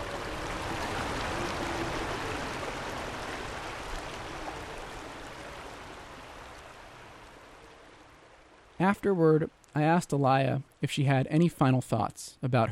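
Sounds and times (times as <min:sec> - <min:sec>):
creek water flowing over rocks: 0:00.0 - 0:09.6
speech: 0:08.8 - 0:12.7.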